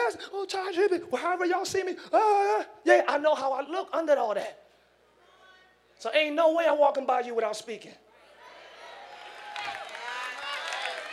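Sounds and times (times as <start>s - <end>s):
speech: 0.4s - 4.6s, 6.0s - 8.0s
audience clapping: 9.0s - 11.1s.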